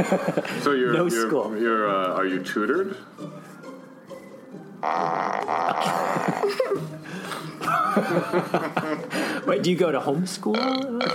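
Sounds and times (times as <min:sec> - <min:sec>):
laughter: 0:00.0 - 0:00.6, 0:05.5 - 0:09.4
speech: 0:00.0 - 0:03.5, 0:04.8 - 0:11.1
loud drawn-out fart: 0:04.8 - 0:06.4.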